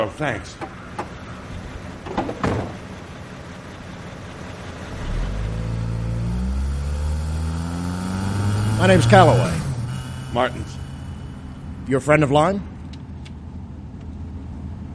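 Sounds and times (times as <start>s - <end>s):
speech: 0.0s - 0.8s, 8.8s - 9.6s, 10.3s - 10.8s, 11.9s - 12.7s
car door thudding shut: 2.1s - 2.9s
car engine starting and accelerating away: 2.6s - 11.9s.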